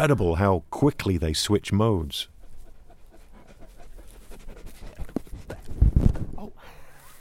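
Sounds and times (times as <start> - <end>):
speech: 0.0 - 2.3
sheep-guarding dog with a long white coat panting: 2.1 - 6.4
thumps: 4.9 - 6.4.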